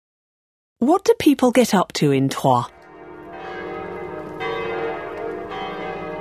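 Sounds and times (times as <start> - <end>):
speech: 0.8 - 2.8
church bells ringing in overlapping peals: 2.7 - 6.1.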